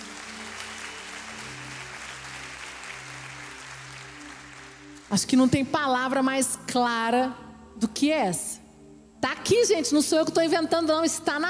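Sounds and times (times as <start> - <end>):
church audience applauding: 0.0 - 5.1
speech: 5.1 - 8.6, 9.2 - 11.4.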